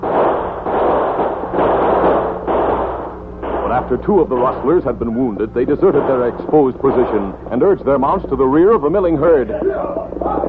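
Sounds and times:
rapid gunfire in a Western shootout: 0.0 - 5.0, 5.8 - 8.8
speech: 3.9 - 10.4.

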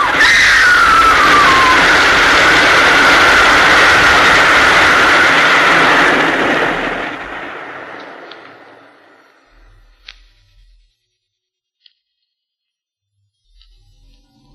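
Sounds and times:
shrill train whistle sliding downward in pitch: 0.0 - 6.2
train roaring past: 0.0 - 10.1.

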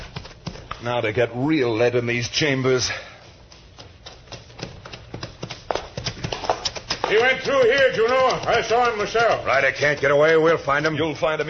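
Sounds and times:
horse hooves trotting: 0.0 - 0.9, 3.4 - 11.4
speech: 0.8 - 3.1, 7.1 - 11.4.

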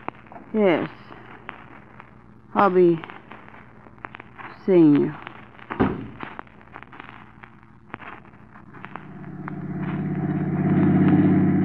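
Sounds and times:
sharp clicks and pops: 0.0 - 11.6
speech: 0.5 - 1.0, 2.5 - 3.1, 4.7 - 5.2
car engine rumbling while driving at about 20 miles per hour behind another car: 8.8 - 11.6.

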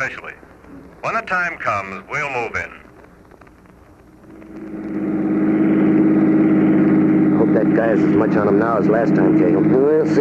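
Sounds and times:
speech: 0.0 - 2.8, 7.7 - 10.1
car engine revving during a chase: 4.2 - 10.1.

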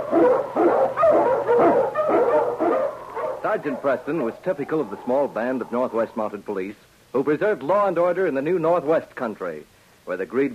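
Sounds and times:
Eskimo lead sled dog barking in the Yukon: 0.0 - 6.3
speech: 3.6 - 10.5.

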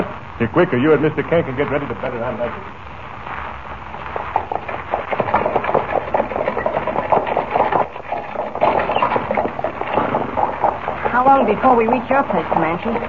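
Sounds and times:
speech: 0.4 - 3.4, 11.3 - 13.0
horse-drawn buckboard wagon rattling along: 4.4 - 13.0.

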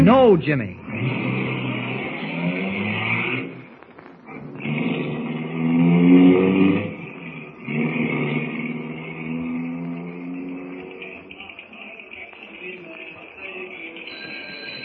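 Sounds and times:
speech: 0.0 - 1.4
car engine revving: 0.0 - 11.5
car pulling away: 0.8 - 11.9.

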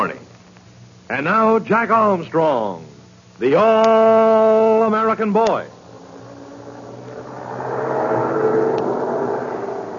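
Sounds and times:
speech: 1.1 - 5.8
heavy army truck engine running with a low rumbling drone: 4.8 - 9.9.

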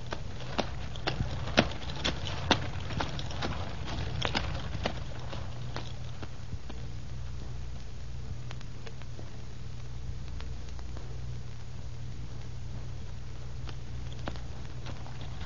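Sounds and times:
low rumbling drone of a rolling cart: 0.0 - 6.9, 13.9 - 15.4
donkey hooves clip-clopping pulling a cart: 0.0 - 15.4.

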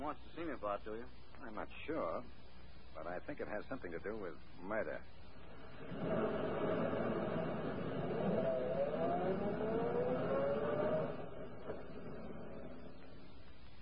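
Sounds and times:
speech: 0.0 - 5.2, 5.8 - 7.0
car engine drone and road rumble while driving: 5.4 - 13.8.

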